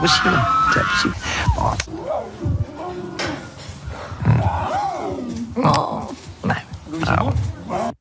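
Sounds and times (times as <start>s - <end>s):
speech: 0.0s - 2.5s
lion cubs' whiny rising-and-falling cries: 0.0s - 6.2s
female and male lion cubs growling and snarling: 0.0s - 7.9s.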